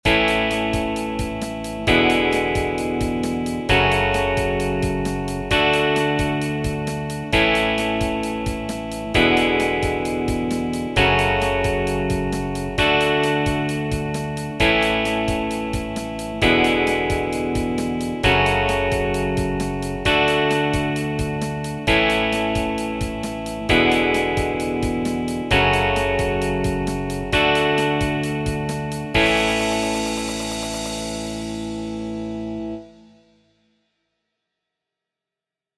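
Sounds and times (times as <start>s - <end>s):
fast rock music, full band: 0.0s - 32.8s.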